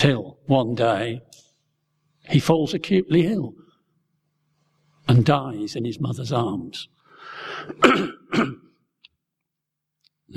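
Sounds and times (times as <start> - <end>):
speech: 0.0 - 1.4, 2.3 - 3.6, 5.1 - 8.6
person coughing: 7.6 - 8.8
person clearing throat: 7.7 - 8.8.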